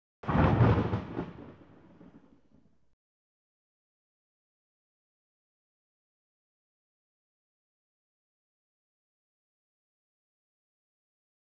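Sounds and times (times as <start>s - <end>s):
single thunder clap: 0.2s - 2.6s.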